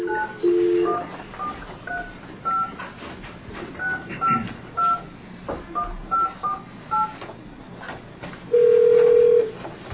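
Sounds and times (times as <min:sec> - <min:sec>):
electronic telephone keypad tones: 0:00.0 - 0:02.8, 0:03.8 - 0:05.1, 0:05.8 - 0:07.2, 0:08.5 - 0:09.6.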